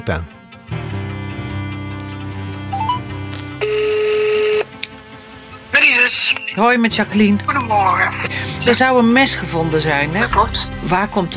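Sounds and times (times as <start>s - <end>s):
speech: 0.0s - 0.4s, 6.0s - 11.3s
steady loud telephone tone: 2.7s - 6.6s
telephone dialling beeps: 3.6s - 4.7s.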